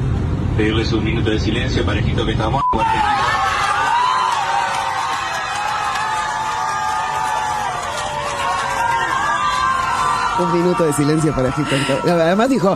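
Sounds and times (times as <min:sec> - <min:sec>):
speech: 0:00.6 - 0:03.5, 0:10.4 - 0:12.7
crowd of passengers shouting and cheering on a plane: 0:02.7 - 0:12.7.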